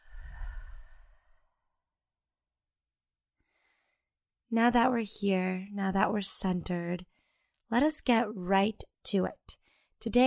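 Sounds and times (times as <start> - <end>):
deep breath in through the nose and out through the mouth: 0.0 - 1.7, 3.4 - 4.1, 7.1 - 7.6, 9.6 - 10.0
speech: 4.5 - 10.2.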